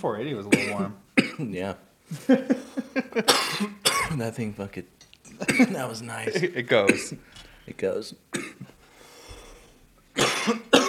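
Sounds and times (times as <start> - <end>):
speech: 0.0 - 8.7, 10.2 - 10.8
low room noise: 0.0 - 10.8
single sharp harsh cough: 0.5 - 1.5, 3.2 - 4.2, 5.4 - 5.8, 6.8 - 7.2, 8.4 - 8.7, 10.2 - 10.8.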